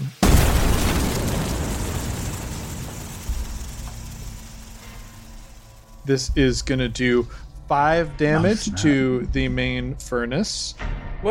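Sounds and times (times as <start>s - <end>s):
loud explosion: 0.2s - 7.1s
roaring hissing rumble: 0.2s - 9.5s
speech: 6.1s - 11.3s.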